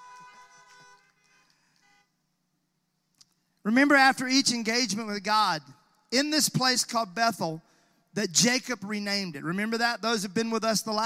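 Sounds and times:
several car horns honking together: 0.0 - 2.2
speech: 3.6 - 11.0.

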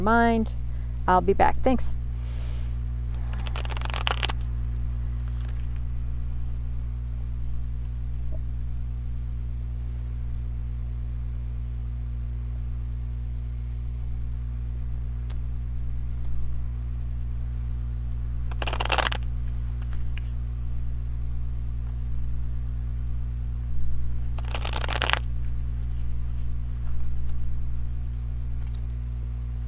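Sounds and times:
speech: 0.0 - 2.0
steady low electrical hum: 0.0 - 29.6
deck of tarot cards shuffling: 3.2 - 4.5, 18.5 - 20.4, 24.4 - 25.2.

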